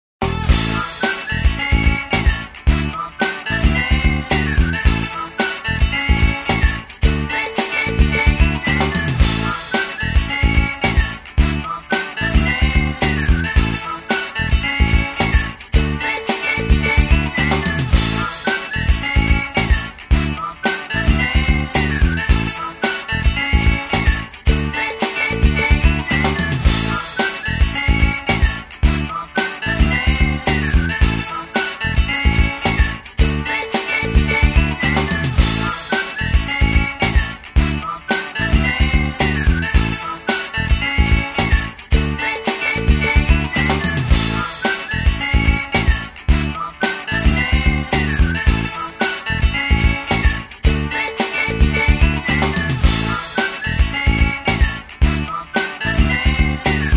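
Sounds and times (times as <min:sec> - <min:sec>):
ringtone music: 0:00.2 - 0:56.9.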